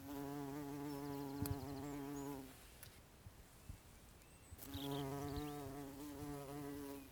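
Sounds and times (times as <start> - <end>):
bumblebee buzzing: 0.0 - 2.5, 4.6 - 7.1
background noise: 0.0 - 7.1.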